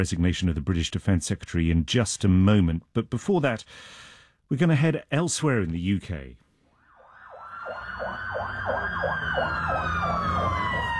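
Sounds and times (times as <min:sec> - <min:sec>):
speech: 0:00.0 - 0:06.4
emergency service sirens responding to riots in Belfast at night: 0:06.8 - 0:10.9.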